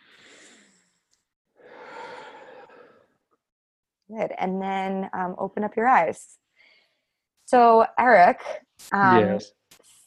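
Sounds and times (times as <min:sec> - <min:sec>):
deep breath in and out during a guided breathing exercise: 0:00.0 - 0:01.0, 0:01.6 - 0:03.1, 0:06.6 - 0:07.1
speech: 0:04.1 - 0:06.4, 0:07.5 - 0:09.8.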